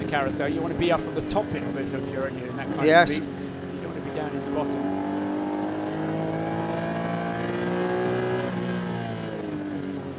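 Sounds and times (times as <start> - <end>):
race car engine at high revs accelerating uphill out of the carousel corner: 0.0 - 9.9
speech: 0.1 - 3.5, 4.2 - 5.1.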